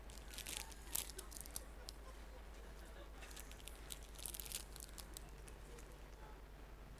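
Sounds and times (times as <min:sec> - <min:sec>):
snack bag torn open and crinkled: 0:00.0 - 0:02.1, 0:03.2 - 0:06.0
low steady hum: 0:00.0 - 0:06.9.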